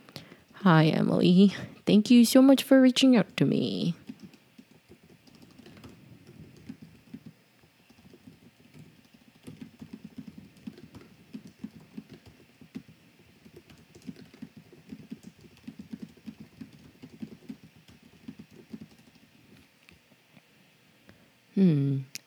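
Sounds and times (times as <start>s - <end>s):
faint hum: 0.0s - 22.2s
speech: 0.6s - 4.0s
typing on a computer keyboard while writing an email: 3.1s - 19.4s.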